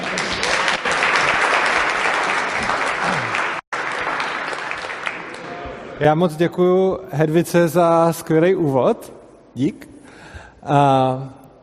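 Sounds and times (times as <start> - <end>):
audience applause welcoming a speaker: 0.0 - 5.7
speech: 6.0 - 9.9, 10.6 - 11.4.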